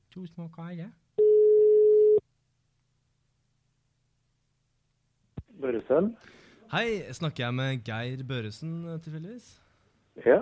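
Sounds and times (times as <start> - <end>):
speech: 0.2 - 1.3, 5.6 - 9.6, 10.2 - 10.3
steady mid-pitched telephone ringback beep: 1.2 - 2.2.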